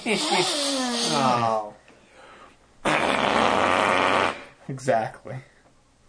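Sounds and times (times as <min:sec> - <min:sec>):
fart noise: 0:00.0 - 0:01.6, 0:02.8 - 0:04.6
speech: 0:00.0 - 0:01.7, 0:04.7 - 0:05.5.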